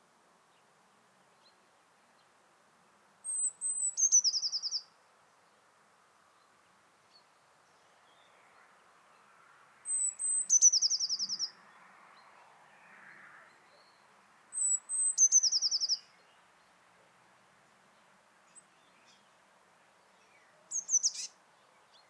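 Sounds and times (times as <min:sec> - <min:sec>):
faint background noise: 0:00.0 - 0:22.0
Eurasian blue tit Cyanistes caeruleus song of thin whistle dropping into trill: 0:03.3 - 0:04.9, 0:09.9 - 0:11.6, 0:14.5 - 0:16.2, 0:20.2 - 0:22.0.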